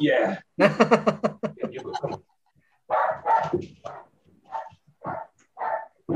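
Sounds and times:
speech: 0.0 - 2.2
laughter: 0.6 - 2.3
dog barking and whining at a door: 2.9 - 6.1.

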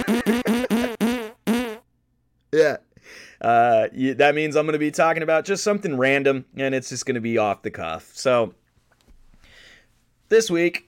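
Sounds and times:
buzzy fart sound effects: 0.0 - 1.8
speech: 2.5 - 8.6, 10.3 - 10.8.

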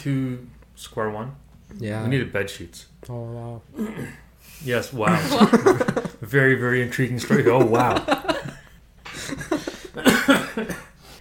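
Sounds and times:
speech: 0.0 - 8.3
person coughing in a short rough fit: 3.8 - 4.3, 9.7 - 11.0
laughter: 5.0 - 6.2, 7.2 - 10.7.

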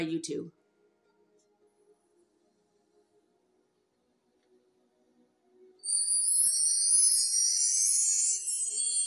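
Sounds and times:
mark tree chimes of tiny metal bars ringing: 5.9 - 9.0.

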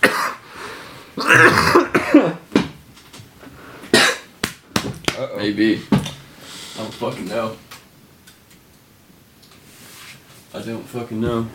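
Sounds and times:
person clearing throat: 0.0 - 0.4, 1.2 - 2.5, 3.9 - 4.3
person coughing: 0.0 - 0.4, 1.2 - 2.5, 3.9 - 4.3
speech: 1.3 - 2.4, 5.4 - 6.0, 7.0 - 7.7, 10.6 - 11.5.

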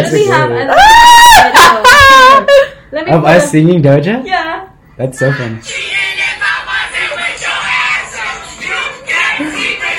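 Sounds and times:
speech: 0.0 - 1.8, 3.1 - 5.8
several people shouting and yelling together: 0.8 - 2.4.

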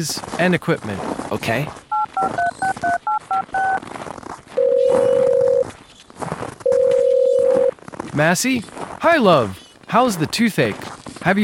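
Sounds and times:
speech: 0.0 - 2.8, 8.2 - 11.4
long steady single-pitched telephone tones: 1.9 - 3.8, 4.6 - 5.7, 6.6 - 7.7
telephone keypad beeps as a number is dialed: 1.9 - 3.8, 4.6 - 5.6, 6.6 - 7.7.

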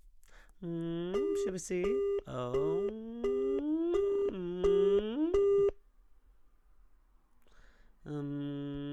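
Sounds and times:
speech: 0.6 - 3.1
phone line calling tone beeps: 0.9 - 5.8.

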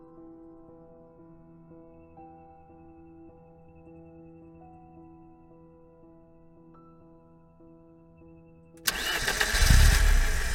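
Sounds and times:
truck engine starting and idling: 8.8 - 10.5.

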